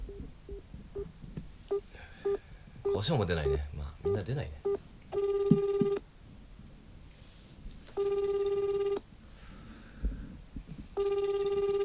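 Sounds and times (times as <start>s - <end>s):
faint noise: 0.0s - 11.8s
telephone ringback tone of an outgoing call: 1.7s - 6.0s, 8.0s - 9.1s, 11.0s - 11.8s
speech: 3.0s - 4.6s.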